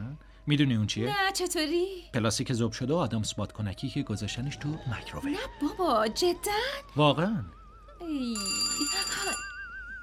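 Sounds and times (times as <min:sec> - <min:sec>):
speech: 0:00.5 - 0:09.4
warbling electronic telephone ring: 0:08.2 - 0:10.0.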